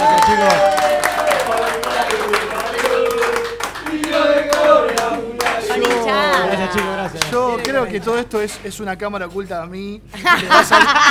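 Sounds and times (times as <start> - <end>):
laughter: 0.0 - 8.4, 10.1 - 11.0
small group clapping: 0.0 - 8.6
voices calling out and chattering: 0.0 - 8.7
speech: 7.8 - 11.0.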